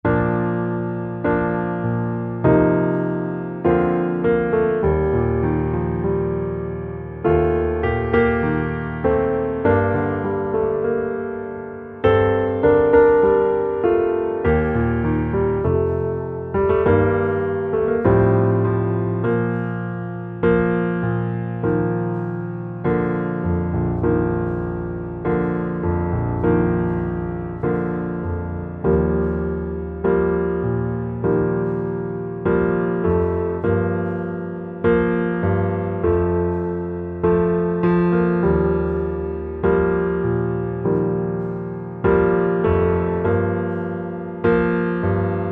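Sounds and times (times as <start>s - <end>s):
piano underscore: 0.0s - 45.4s.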